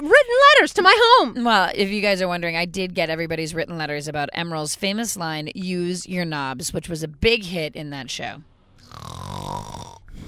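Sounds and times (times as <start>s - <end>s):
speech: 0.0s - 9.4s
person imitating a snore: 8.8s - 10.2s.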